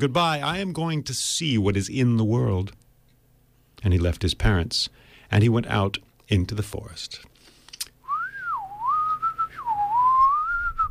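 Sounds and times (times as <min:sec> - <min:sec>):
speech: 0:00.0 - 0:02.8, 0:03.8 - 0:07.3
person whistling a wavering tune while walking into a forest: 0:08.1 - 0:10.8.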